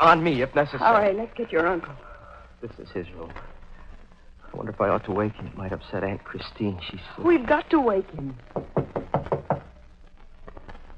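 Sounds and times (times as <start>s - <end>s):
speech: 0.0s - 3.6s, 4.5s - 9.0s
knocking on a wooden door: 8.5s - 9.7s.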